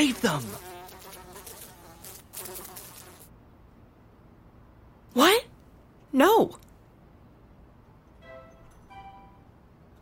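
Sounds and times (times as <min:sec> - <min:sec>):
speech: 0:00.0 - 0:00.7, 0:05.2 - 0:05.5, 0:06.1 - 0:06.6
housefly buzzing around the room: 0:00.0 - 0:03.3.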